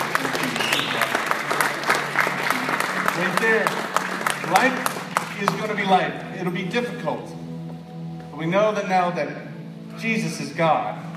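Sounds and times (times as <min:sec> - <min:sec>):
audience applause at a religious gathering: 0:00.0 - 0:06.1
speech: 0:04.5 - 0:07.4, 0:08.4 - 0:09.4, 0:10.0 - 0:11.0.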